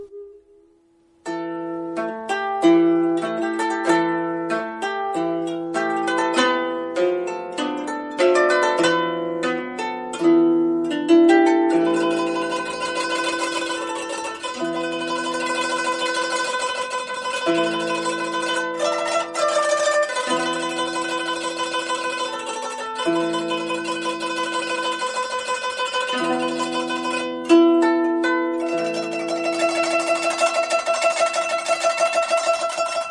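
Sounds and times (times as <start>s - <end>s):
koto zither plucked with a plectrum: 0.0s - 33.0s.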